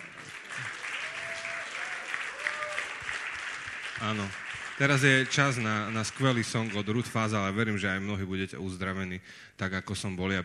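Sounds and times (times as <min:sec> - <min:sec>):
audience applause: 0:00.0 - 0:07.1
speech: 0:04.0 - 0:10.4.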